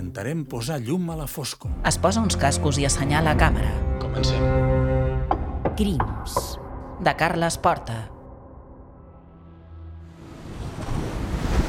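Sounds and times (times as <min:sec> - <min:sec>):
speech: 0:00.2 - 0:04.8, 0:05.8 - 0:08.1
rough sea waves crashing against rocks: 0:10.4 - 0:11.6.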